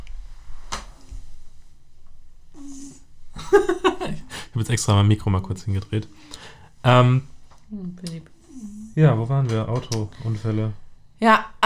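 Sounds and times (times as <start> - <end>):
male cat giving short low grunt instead of purring: 2.5 - 3.1
laughter: 3.4 - 4.6
speech: 3.5 - 11.6.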